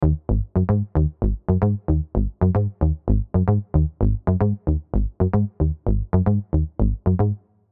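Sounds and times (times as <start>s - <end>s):
bass sequence: 0.0s - 7.4s.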